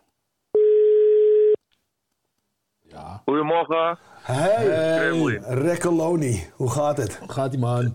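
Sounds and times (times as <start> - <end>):
ringing tone of an outgoing telephone call: 0.6 - 1.6
speech: 3.2 - 7.9.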